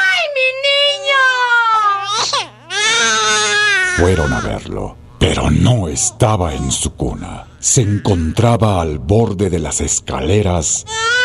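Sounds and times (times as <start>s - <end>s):
baby wailing in long high-pitched cries: 0.0s - 4.6s, 7.4s - 8.6s, 10.9s - 11.2s
speech: 4.0s - 11.2s.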